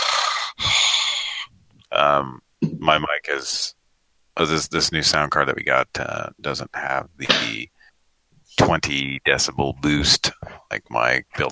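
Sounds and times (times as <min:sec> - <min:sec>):
heavy breathing into a microphone: 0:00.0 - 0:01.6, 0:10.3 - 0:10.7
speech: 0:02.0 - 0:03.8, 0:04.4 - 0:07.8, 0:08.6 - 0:11.5.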